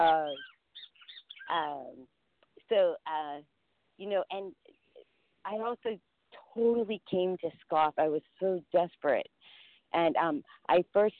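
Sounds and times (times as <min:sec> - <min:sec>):
speech: 0:00.0 - 0:00.5, 0:01.5 - 0:04.8, 0:05.4 - 0:11.1
high bird chirps: 0:00.0 - 0:01.5.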